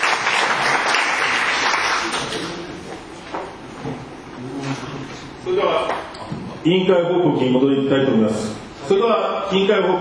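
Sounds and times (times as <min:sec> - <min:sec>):
room full of people applauding: 0:00.0 - 0:02.4
speech: 0:05.5 - 0:09.9.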